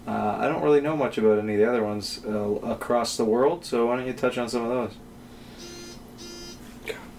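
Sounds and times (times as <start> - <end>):
low hum: 0.0 - 7.1
speech: 0.6 - 5.1
phone notification short high-pitched electronic beeps: 5.6 - 6.6.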